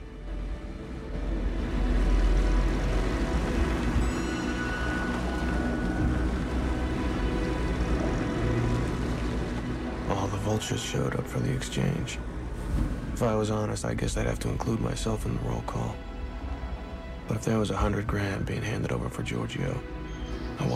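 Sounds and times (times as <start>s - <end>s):
convoys of cars driving up: 0.0s - 17.4s
speech: 10.6s - 12.3s, 13.2s - 16.1s, 17.3s - 20.0s.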